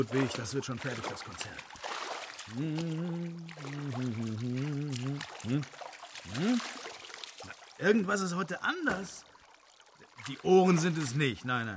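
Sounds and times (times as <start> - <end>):
speech: 0.0 - 1.8, 2.5 - 9.3, 10.2 - 11.7
warm bathwater sloshing as a man slides into a tub: 0.0 - 11.5
man sighing: 2.5 - 4.9
man humming or groaning: 2.5 - 6.8.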